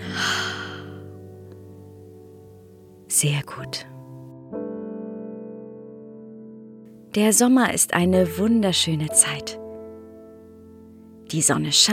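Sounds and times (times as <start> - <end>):
deep exhale: 0.0 - 1.0
speech: 3.2 - 4.0, 7.1 - 9.6, 11.3 - 11.9.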